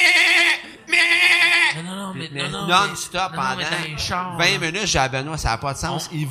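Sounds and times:
human voice imitating baby goat bleats: 0:00.0 - 0:03.8
speech: 0:02.6 - 0:06.2.

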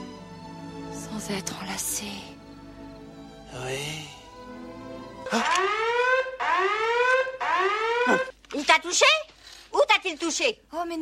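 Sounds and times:
speech: 0:01.2 - 0:02.4, 0:03.5 - 0:04.6, 0:05.3 - 0:06.0, 0:07.6 - 0:11.0
comic personal alarm with upward-sweeping whooping tones: 0:05.3 - 0:08.3.

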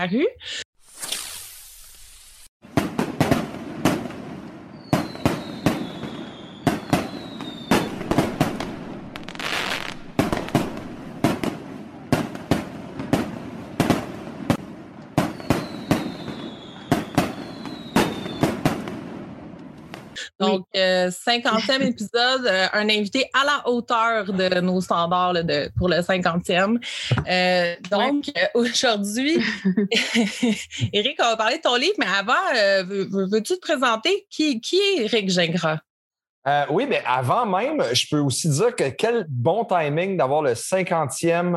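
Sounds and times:
speech: 0:00.0 - 0:00.6, 0:20.4 - 0:41.5
fireworks hiss: 0:00.8 - 0:04.1, 0:04.9 - 0:11.6, 0:15.2 - 0:19.0
whistling fireworks streaks rising: 0:00.8 - 0:20.3
fireworks bangs and crackles: 0:02.6 - 0:20.6
laughter: 0:21.4 - 0:22.2, 0:29.3 - 0:31.0.

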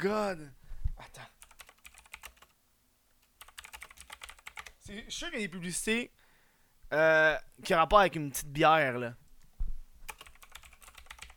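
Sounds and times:
speech: 0:00.0 - 0:01.4, 0:04.9 - 0:06.2, 0:06.9 - 0:09.2
quick typing on a computer keyboard: 0:01.4 - 0:02.5, 0:03.3 - 0:04.8, 0:10.1 - 0:11.3.

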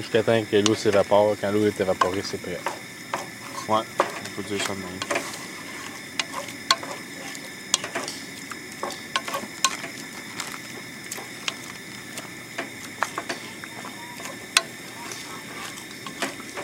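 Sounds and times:
speech: 0:00.0 - 0:02.9, 0:03.7 - 0:05.2
meat with water sizzling in a pan: 0:00.0 - 0:16.6
utensil scraping against a pan: 0:03.2 - 0:10.6, 0:11.3 - 0:16.6.

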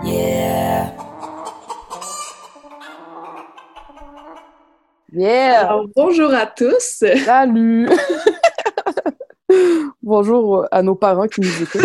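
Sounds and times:
short podcast musical jingle with percussive hits: 0:00.0 - 0:01.2
chicken clucking: 0:00.0 - 0:04.8
speech: 0:05.2 - 0:11.8
laughter: 0:07.1 - 0:09.2, 0:11.4 - 0:11.8.

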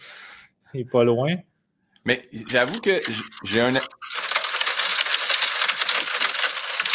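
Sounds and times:
speech: 0:00.7 - 0:04.1
heavy rain shower drumming on a hard car roof: 0:04.2 - 0:06.9.

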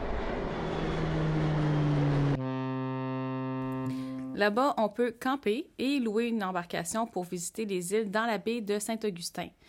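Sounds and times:
airplane engine droning: 0:00.0 - 0:04.4
speech: 0:04.4 - 0:09.6.

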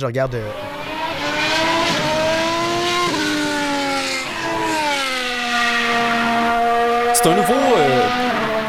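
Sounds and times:
speech: 0:00.0 - 0:00.8, 0:07.2 - 0:08.3
Formula 1 hybrid V6 engine revving: 0:00.0 - 0:08.6.

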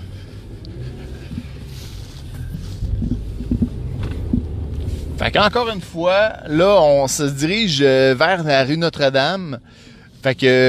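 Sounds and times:
car driving along a residential street: 0:00.0 - 0:10.6
soft thumps: 0:02.8 - 0:04.9
wind noise: 0:02.8 - 0:05.0
speech: 0:05.2 - 0:10.6.

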